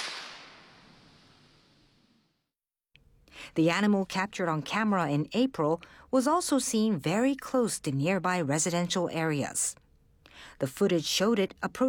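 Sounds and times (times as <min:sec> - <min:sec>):
firecracker bang set off by city staff to scare bears: 0:00.0 - 0:02.1
speech: 0:03.4 - 0:09.8, 0:10.4 - 0:11.8.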